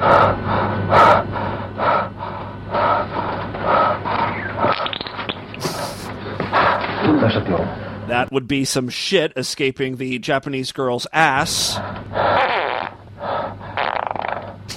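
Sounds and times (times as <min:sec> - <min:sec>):
man breathing heavily with raspy inhales and exhales: 0:00.0 - 0:04.8, 0:05.6 - 0:07.0, 0:11.6 - 0:12.4, 0:13.1 - 0:13.8
low steady hum: 0:00.0 - 0:14.7
brief hissing burst: 0:05.6 - 0:06.1
speech: 0:08.1 - 0:12.6.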